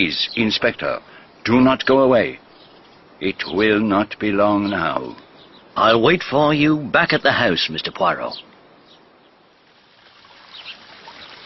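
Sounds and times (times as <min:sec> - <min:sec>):
speech: 0:00.0 - 0:02.4, 0:03.2 - 0:05.2, 0:05.8 - 0:08.5
small waterfall trickling and splashing: 0:09.4 - 0:11.4.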